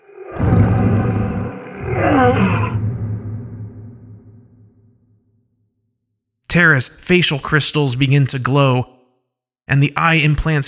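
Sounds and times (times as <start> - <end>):
pilots letting out ferocious guttural roars: 0.0 - 3.7
lingering growl: 0.0 - 4.9
speech: 6.5 - 8.9, 9.7 - 10.6.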